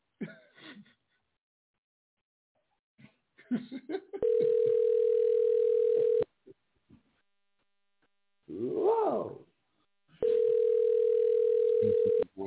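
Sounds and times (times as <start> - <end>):
speech: 3.5 - 4.3
phone line ringback tone while placing a call: 4.2 - 6.2, 10.2 - 12.2.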